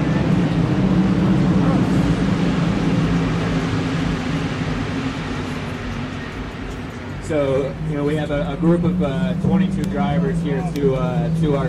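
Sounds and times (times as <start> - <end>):
race cars roaring past: 0.0 - 11.6
speech: 7.3 - 11.6.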